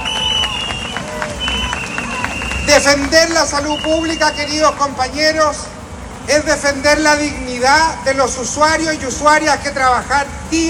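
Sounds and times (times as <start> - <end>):
large crowd applauding at a rally: 0.0 - 4.9
sustained whistle-like tones: 0.0 - 4.9, 6.4 - 7.9
speech: 2.8 - 5.7, 6.3 - 10.6.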